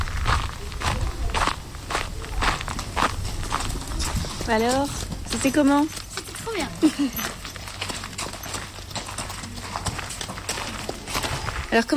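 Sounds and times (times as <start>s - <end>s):
hooves of a ridden horse clip-clopping: 0.0s - 11.9s
low rumble of outdoor noise: 0.0s - 11.9s
speech: 4.5s - 7.4s, 11.7s - 11.9s.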